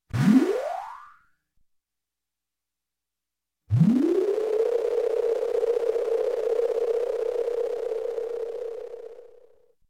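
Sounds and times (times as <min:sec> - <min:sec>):
electronic space lift-off: 0:03.7 - 0:09.6.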